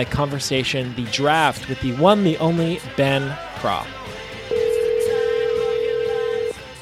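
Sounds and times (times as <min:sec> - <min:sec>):
speech: 0:00.0 - 0:04.1
telephone dialing tone: 0:04.5 - 0:06.6.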